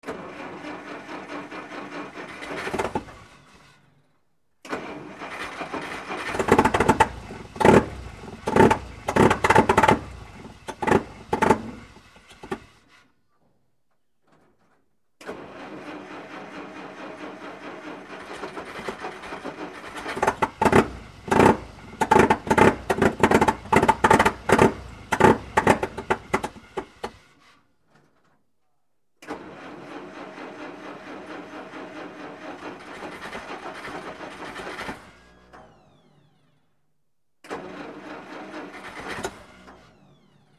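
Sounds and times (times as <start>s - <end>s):
Dodge fire truck engine running rough: 0.1s - 4.0s, 4.7s - 12.9s, 15.3s - 27.5s, 29.4s - 36.2s.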